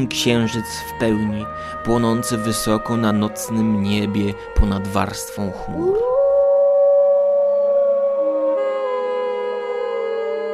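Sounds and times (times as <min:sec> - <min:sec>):
speech: 0:00.0 - 0:06.1
werewolf howl in a small town in Maine: 0:05.7 - 0:10.5.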